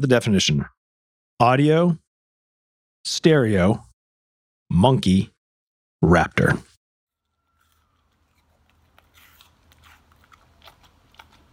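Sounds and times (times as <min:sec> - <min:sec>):
speech: 0:00.0 - 0:00.8, 0:01.4 - 0:02.0, 0:03.0 - 0:03.9, 0:04.7 - 0:05.3, 0:06.0 - 0:06.7
dog crunching and chewing an apple: 0:07.2 - 0:11.5.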